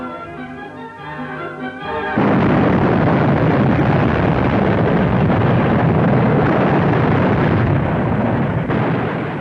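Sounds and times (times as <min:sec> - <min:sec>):
dynamite blast in open bauxite mine: 0:01.8 - 0:09.3
rumbling debris from dynamite blast: 0:02.2 - 0:09.3.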